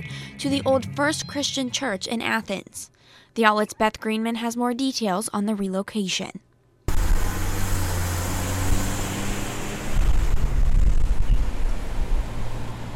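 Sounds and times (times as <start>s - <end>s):
speech: 0.0s - 6.5s
moderate street traffic passing by: 6.9s - 12.9s
breezy wind noise: 8.6s - 12.9s.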